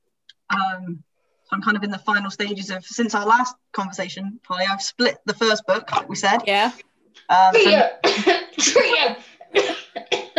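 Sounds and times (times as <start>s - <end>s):
speech: 0.5s - 10.2s
person clearing throat and coughing in conversation: 7.6s - 10.3s.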